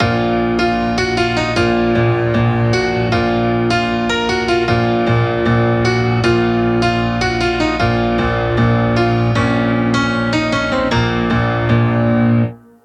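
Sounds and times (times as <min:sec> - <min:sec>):
hip hop melody at 154 BPM: 0:00.0 - 0:12.8.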